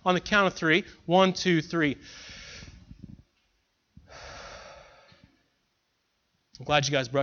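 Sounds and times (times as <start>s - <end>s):
speech: 0.0s - 2.4s, 6.6s - 7.2s
group of people breathing deeply during a guided breathing exercise: 2.0s - 3.2s, 4.0s - 5.5s.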